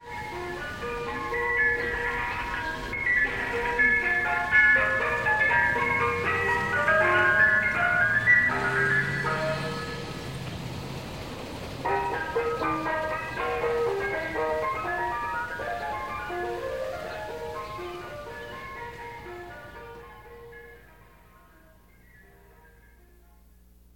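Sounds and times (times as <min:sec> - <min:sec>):
ice cream truck: 0:00.0 - 0:23.8.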